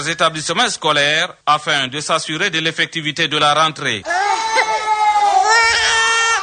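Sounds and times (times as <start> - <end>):
speech: 0.0 - 4.6
new pupils crying in a kindergarten: 4.0 - 6.4.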